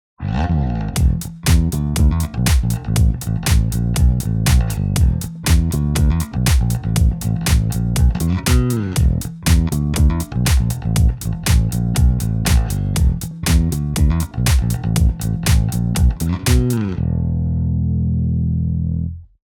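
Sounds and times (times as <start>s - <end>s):
bass guitar played with real fingers: 0.2s - 19.4s.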